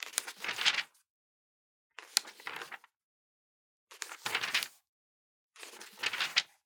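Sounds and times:
organic paper page turning: 0.1s - 0.9s, 4.0s - 4.7s, 5.7s - 6.6s.

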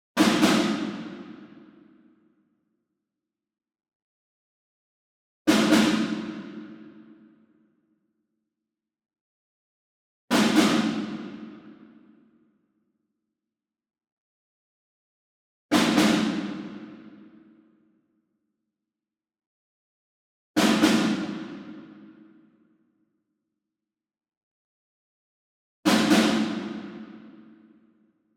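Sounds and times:
distant snare drum ensemble group playing doubled: 0.2s - 1.7s, 5.5s - 7.1s, 10.3s - 11.9s, 15.7s - 17.3s, 20.6s - 22.1s, 25.9s - 27.5s.

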